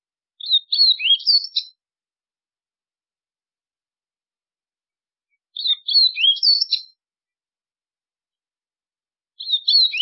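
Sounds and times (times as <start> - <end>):
White-throated seedeater song fragment: 0.4 - 1.8, 5.4 - 7.0, 9.4 - 10.0.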